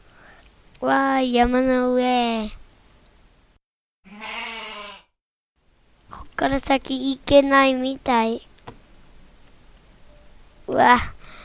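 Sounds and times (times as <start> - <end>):
speech: 0.8 - 2.6, 6.4 - 8.5, 10.8 - 11.2
goat bleating in a video game: 4.1 - 5.1.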